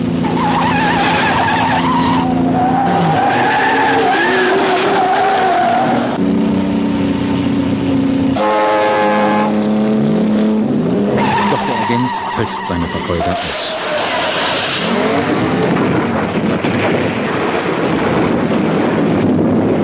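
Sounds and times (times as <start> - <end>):
car engines roaring in a chase on a mountain road: 0.0 - 19.8
tires squealing in skids on a mountain road: 0.2 - 6.2, 11.1 - 15.7
speech: 12.5 - 14.0.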